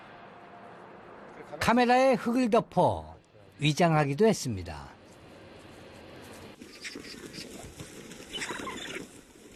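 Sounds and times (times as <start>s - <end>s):
speech: 1.4s - 5.0s
eagles scuffling over a roadkill water deer carcass, rustling, thumping and flapping: 5.4s - 9.5s
harsh rasping eagle calls: 8.3s - 9.1s.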